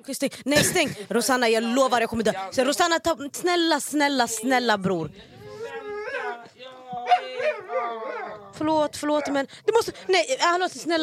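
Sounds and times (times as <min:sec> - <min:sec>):
speech: 0:00.0 - 0:05.3, 0:08.6 - 0:11.0
dog whimpering and howling: 0:05.4 - 0:09.4.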